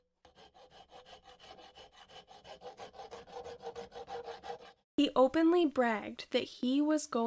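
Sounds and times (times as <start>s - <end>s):
saw cutting through metal window bars: 0.2s - 4.8s
speech: 5.0s - 7.2s.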